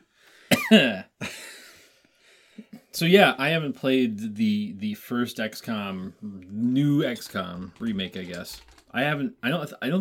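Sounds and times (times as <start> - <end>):
harsh coughs: 0.5 - 1.4
speech: 0.7 - 1.4, 3.0 - 10.0.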